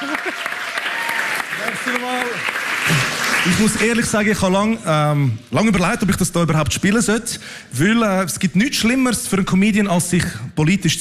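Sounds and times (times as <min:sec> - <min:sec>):
people cheering and whooping: 0:00.0 - 0:02.2
crowd applauding: 0:00.0 - 0:04.8
speech: 0:01.9 - 0:02.5, 0:03.4 - 0:10.9.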